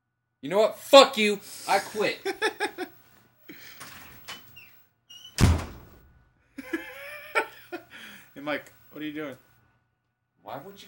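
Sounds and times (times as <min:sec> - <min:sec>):
speech: 0:00.4 - 0:02.9, 0:08.4 - 0:09.5, 0:10.4 - 0:10.8
laughter: 0:01.9 - 0:03.8, 0:06.6 - 0:08.1
door slamming shut: 0:05.2 - 0:06.2.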